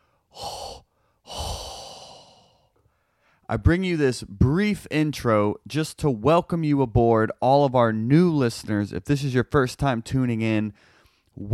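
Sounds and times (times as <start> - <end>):
heavy breathing into a microphone: 0.0 - 3.5, 10.8 - 11.4
speech: 3.5 - 11.5.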